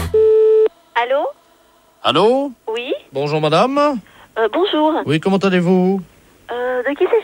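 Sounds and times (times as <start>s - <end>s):
telephone beep after hanging up the call: 0.2s - 0.7s
speech: 1.0s - 1.4s, 2.0s - 7.2s.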